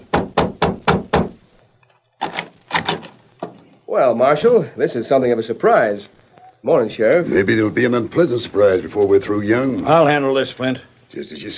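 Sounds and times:
firm knocking on the door of a home: 0.0 - 1.4
speech: 3.9 - 11.5.

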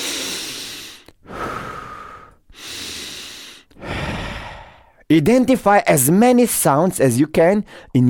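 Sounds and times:
deep slow cleansing breaths while sitting upright in meditation: 0.0 - 5.1
speech: 5.1 - 8.0.

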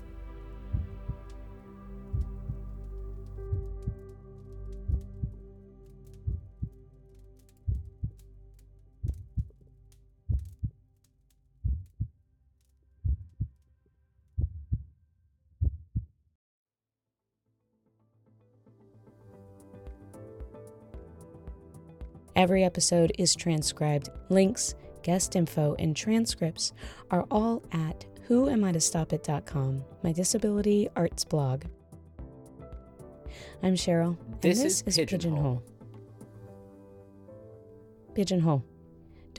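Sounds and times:
low droning hum: 0.0 - 10.9
steady slow heartbeat thumping: 0.7 - 1.3, 2.1 - 2.7, 3.4 - 4.1, 4.8 - 5.4, 6.2 - 6.8, 7.7 - 8.2, 9.0 - 9.5, 10.3 - 10.7, 11.6 - 12.1, 13.0 - 13.5, 14.4 - 14.8, 15.6 - 16.1
speech: 22.4 - 31.8, 33.4 - 35.7, 38.2 - 38.7.

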